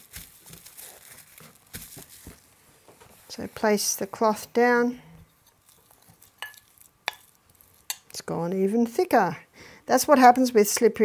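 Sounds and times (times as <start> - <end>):
plastic sheet crinkling as it is laid down and folded for a poultice: 0.0 - 3.5, 5.4 - 7.8
speech: 3.3 - 5.1, 8.3 - 11.0.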